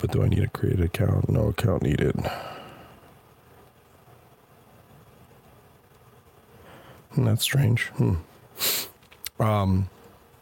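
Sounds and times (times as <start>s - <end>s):
speech: 0.0s - 2.5s, 7.2s - 8.7s, 9.4s - 10.0s
person sniffing: 8.6s - 9.0s.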